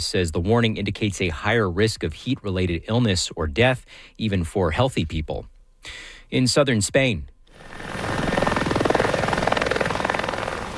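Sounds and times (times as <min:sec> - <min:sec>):
speech: 0:00.0 - 0:07.9
helicopter rotor chop ferrying firefighters to a wildfire in Almeria province, southern Spain: 0:07.5 - 0:10.7.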